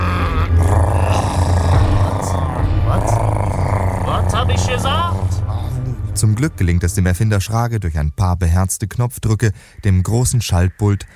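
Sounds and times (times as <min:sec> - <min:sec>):
stomachs growling and gurgling from hunger: 0:00.0 - 0:06.0
speech: 0:06.2 - 0:11.1.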